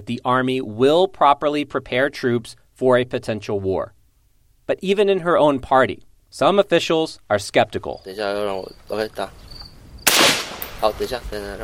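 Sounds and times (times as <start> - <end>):
speech: 0.0 - 4.0, 4.7 - 9.5, 10.8 - 11.6
rifle firing real bullets: 10.0 - 11.0.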